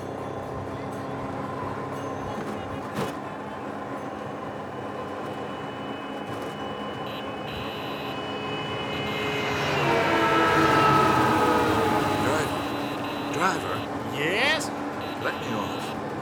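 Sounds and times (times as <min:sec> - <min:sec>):
steady road noise: 0:00.0 - 0:16.1
three-wheeled scooter taxi engine whining through busy city traffic: 0:00.0 - 0:16.1
indistinct voices: 0:04.3 - 0:16.0.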